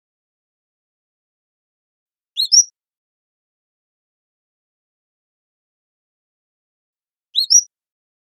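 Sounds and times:
Cordilleran flycatcher calling: 2.4s - 2.7s, 7.4s - 7.6s.

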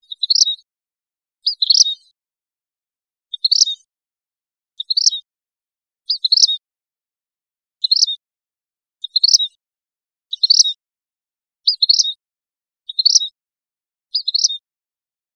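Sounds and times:
vermilion flycatcher calling in Costa Rica: 0.0s - 0.6s, 1.5s - 2.0s, 3.3s - 3.8s, 4.8s - 5.2s, 6.1s - 6.6s, 9.0s - 9.5s, 10.3s - 10.7s, 11.7s - 12.1s, 12.9s - 13.3s, 14.2s - 14.6s.

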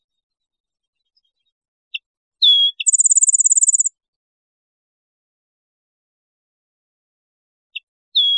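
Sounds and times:
rufous-winged sparrow song: 0.0s - 3.9s, 7.8s - 8.3s.

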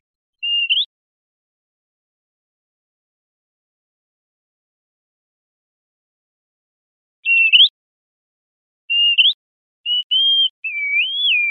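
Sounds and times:
bird whistles: 0.4s - 0.9s, 7.2s - 7.7s, 8.9s - 11.5s.

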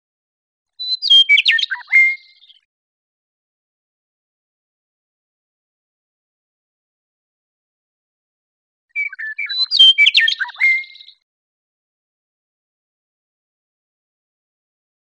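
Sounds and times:
Western meadowlark giving gurgling phrases of falling whistled notes: 0.8s - 2.7s, 8.9s - 11.3s.

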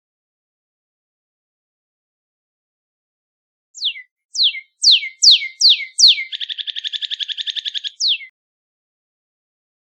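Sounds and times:
northern cardinal singing: 3.8s - 8.4s.

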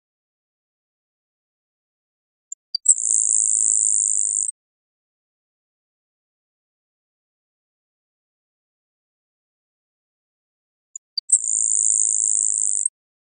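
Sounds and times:
grasshopper sparrow song with ticks and high dry buzz: 2.8s - 4.5s, 11.2s - 12.9s.

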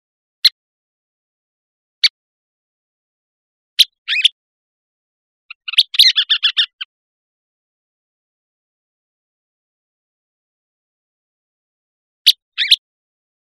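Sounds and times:
Western kingbird calls: 3.8s - 4.4s, 5.5s - 6.9s, 12.2s - 12.8s.

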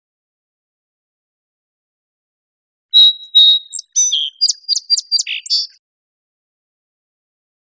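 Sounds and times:
song sparrow song with whistles, sharp chips and buzzy ending: 2.9s - 5.8s.

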